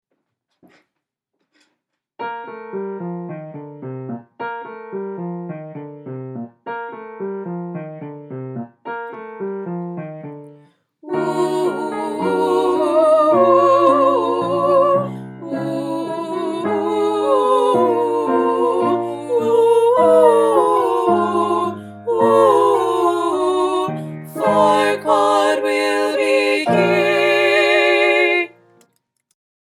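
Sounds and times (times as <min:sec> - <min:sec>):
soprano, alto and tenor voices singing a wedding procession practice track: 0:11.0 - 0:28.7.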